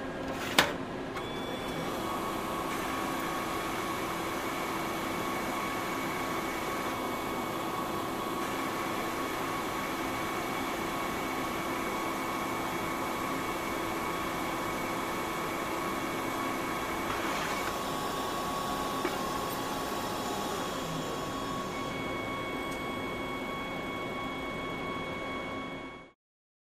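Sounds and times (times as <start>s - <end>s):
copier running: 0.1s - 26.1s.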